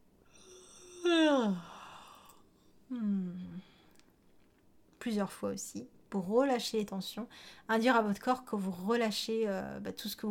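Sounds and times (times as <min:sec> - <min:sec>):
person yawning deliberately with voice: 0:00.3 - 0:03.7
speech: 0:05.0 - 0:10.2.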